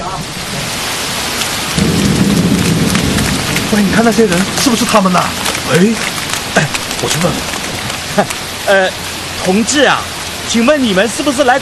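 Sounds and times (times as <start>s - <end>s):
steady heavy rain with dense patter: 0.0s - 11.6s
deep rumbling: 1.5s - 10.5s
speech: 3.7s - 7.6s, 8.2s - 11.6s.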